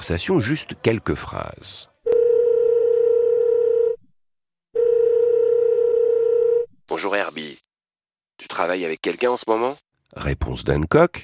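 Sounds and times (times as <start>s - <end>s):
speech: 0.0s - 1.9s, 6.9s - 7.6s, 8.4s - 11.2s
telephone dial tone: 2.1s - 4.0s, 4.8s - 6.7s.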